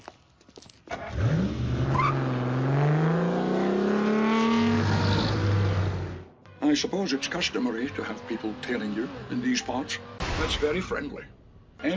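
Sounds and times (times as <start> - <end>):
car engine starting up and revving while accelerating: 0.9 - 6.3, 7.0 - 10.2
speech: 6.8 - 11.9.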